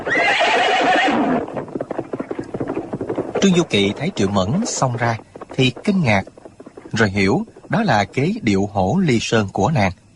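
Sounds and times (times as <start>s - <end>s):
horse whinnying: 0.0s - 3.5s
horse galloping hoofbeats: 0.0s - 9.7s
speech: 3.4s - 6.3s, 6.9s - 10.0s.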